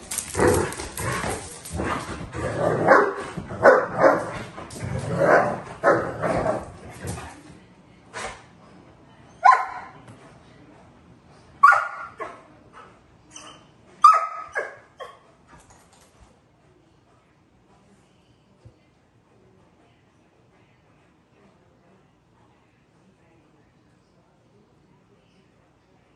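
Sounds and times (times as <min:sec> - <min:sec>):
several dogs barking excitedly: 0:00.0 - 0:07.2, 0:09.4 - 0:10.0, 0:11.6 - 0:12.4, 0:14.0 - 0:15.3.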